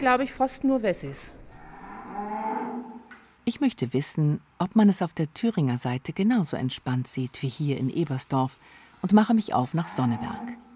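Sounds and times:
speech: 0:00.0 - 0:01.4, 0:03.5 - 0:10.7
long low cow moo: 0:01.6 - 0:03.1, 0:09.8 - 0:10.7.

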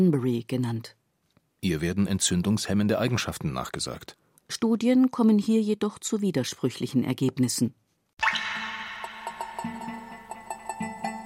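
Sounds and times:
speech: 0:00.0 - 0:01.0, 0:01.6 - 0:08.4
water dripping: 0:08.2 - 0:10.8.

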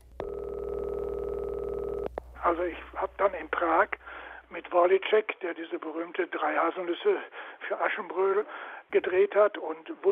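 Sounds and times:
steady telephone line tone: 0:00.2 - 0:02.1
speech: 0:02.5 - 0:10.0.

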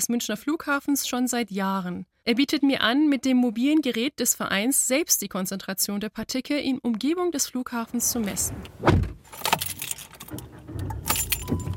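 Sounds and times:
speech: 0:00.0 - 0:09.6
soft thumps and shuffling of a car seat: 0:07.9 - 0:11.7
keys jangling while getting into a car: 0:09.3 - 0:11.7.

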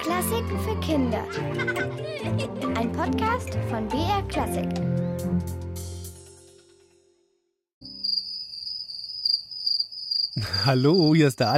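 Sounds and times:
short musical passage: 0:00.0 - 0:08.0
speech: 0:00.1 - 0:05.6, 0:10.4 - 0:11.5
laughter: 0:01.3 - 0:02.3, 0:10.4 - 0:10.9
crickets chirping: 0:07.8 - 0:11.5.

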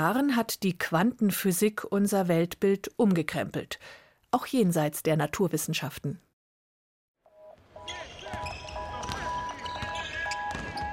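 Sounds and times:
speech: 0:00.0 - 0:06.3
sharp sneaker squeaks on a basketball court: 0:07.9 - 0:10.9
basketball dribbled by an attacker on a hard court: 0:08.3 - 0:10.9.

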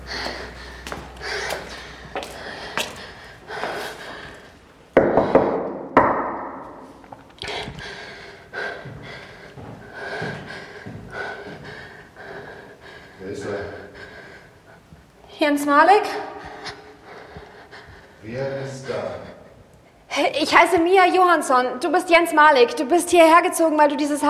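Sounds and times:
knocking on the door of a top-floor attic apartment: 0:05.0 - 0:06.6
speech: 0:15.6 - 0:16.3, 0:18.3 - 0:19.2, 0:20.2 - 0:24.2.

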